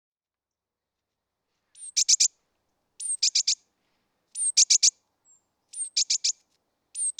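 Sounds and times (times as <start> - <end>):
great tit Parus major calls: 1.8 - 2.3, 3.0 - 3.6, 4.3 - 6.4, 7.0 - 7.1.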